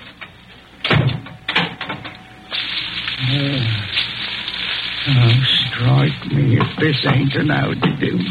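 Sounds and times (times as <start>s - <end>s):
animal shifting about in straw: 2.5s - 6.5s
speech: 6.8s - 8.2s.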